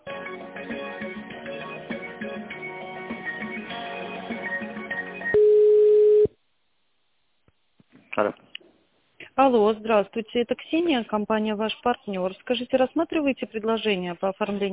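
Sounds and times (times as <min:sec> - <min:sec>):
tinny telephone hold music during call transfer: 0:00.0 - 0:05.4
telephone line tone: 0:05.3 - 0:06.3
speech: 0:08.2 - 0:08.4, 0:09.5 - 0:14.7.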